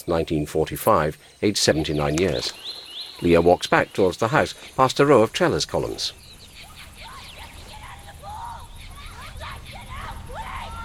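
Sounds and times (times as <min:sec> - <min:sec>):
speech: 0:00.0 - 0:06.2
people by a swimming pool screaming at a snake in the water: 0:06.6 - 0:10.8.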